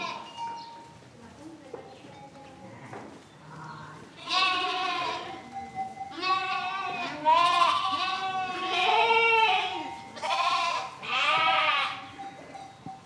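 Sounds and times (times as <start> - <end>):
several lambs bleating: 0.0 - 0.3, 4.2 - 5.5, 6.1 - 12.1.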